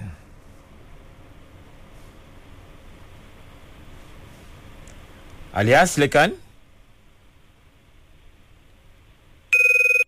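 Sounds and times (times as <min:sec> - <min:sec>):
speech: 0:05.6 - 0:06.4
telephone ringing on an outgoing call: 0:09.5 - 0:10.0.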